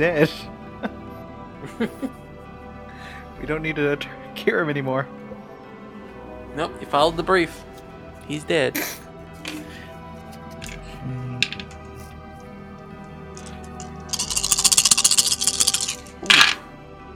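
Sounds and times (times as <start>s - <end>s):
speech: 0.0s - 0.6s, 1.6s - 2.2s, 3.4s - 5.2s, 6.6s - 7.7s, 8.3s - 9.6s
many dice tumbling across a hard table: 11.4s - 11.9s, 13.4s - 16.6s.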